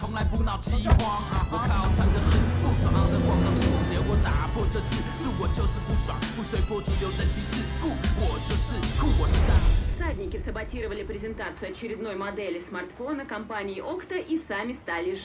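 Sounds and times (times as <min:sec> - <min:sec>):
speech: 0:00.2 - 0:15.2
car engine droning as a vehicle drives away: 0:00.9 - 0:09.9.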